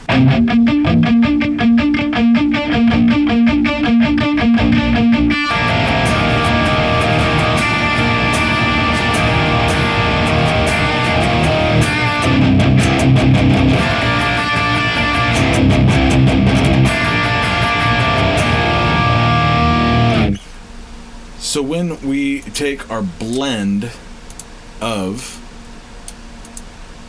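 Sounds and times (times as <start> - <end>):
loud heavily distorted electric guitar through blended impulse responses: 0.0 - 20.5
speech: 21.8 - 24.0, 24.8 - 25.4.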